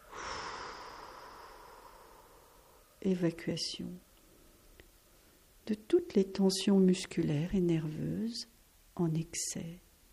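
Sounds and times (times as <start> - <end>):
person taking a long deep breath during a breathing exercise: 0.0 - 3.0
speech: 3.0 - 4.1, 5.7 - 9.8.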